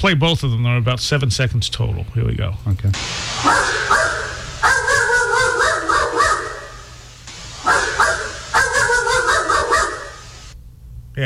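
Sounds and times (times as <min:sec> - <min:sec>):
speech: 0:00.0 - 0:04.2
steady low hum: 0:03.0 - 0:11.1
dog barking: 0:03.4 - 0:10.5.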